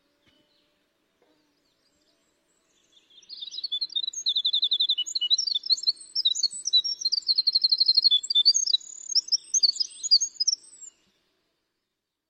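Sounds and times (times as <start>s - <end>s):
winter wren singing high tinkling trills played from tape on the radio: 2.8s - 11.0s.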